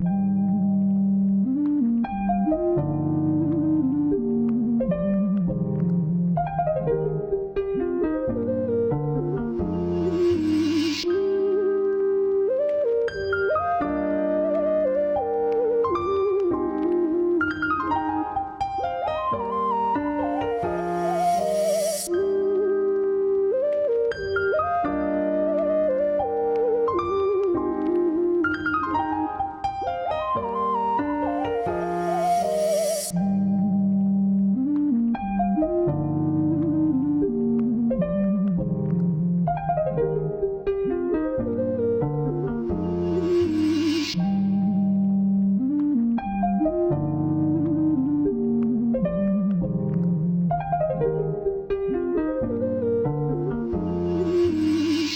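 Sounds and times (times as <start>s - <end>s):
R and B piano melody loop in C minor: 0.0s - 55.1s.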